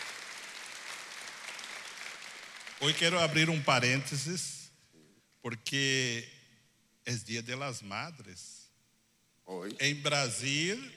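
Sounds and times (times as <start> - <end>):
church congregation applauding: 0.0 - 3.8
speech: 2.8 - 4.6, 5.4 - 6.4, 7.1 - 8.6, 9.5 - 10.9.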